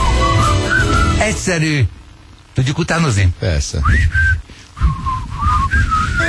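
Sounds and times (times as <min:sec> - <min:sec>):
person whistling an imitation of a call: 0:00.0 - 0:01.4, 0:03.8 - 0:06.2
speech: 0:01.5 - 0:02.0, 0:02.6 - 0:04.5.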